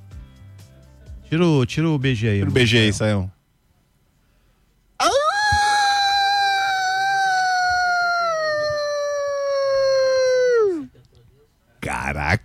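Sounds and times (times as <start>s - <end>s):
speech: 1.3s - 3.4s
person imitating a wolf howl: 5.0s - 10.9s.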